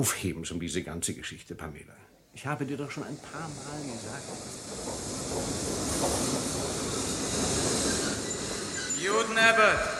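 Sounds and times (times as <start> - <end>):
speech: 0.0 - 6.5, 9.0 - 9.9
train wagons rolling into a station platform: 3.2 - 9.9.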